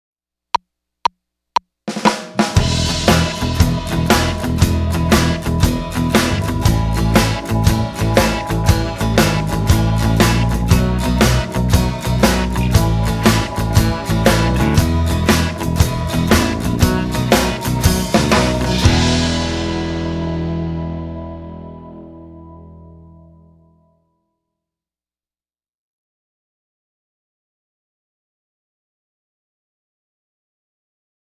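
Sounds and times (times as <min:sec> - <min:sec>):
blues music without guitar: 0:01.9 - 0:23.6.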